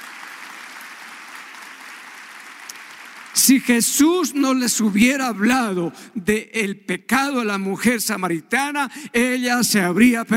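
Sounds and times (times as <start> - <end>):
crowd applauding loudly: 0.0 - 4.4
speech: 3.4 - 10.3.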